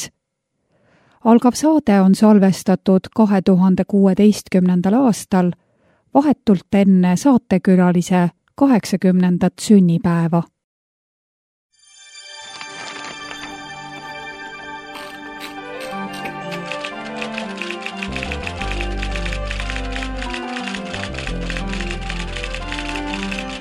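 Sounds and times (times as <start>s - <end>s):
speech: 0.0s - 0.2s, 1.2s - 10.5s
bright instrumental jingle with heavy bass line: 11.8s - 23.6s
typewriter key strikes clattering: 15.0s - 23.6s.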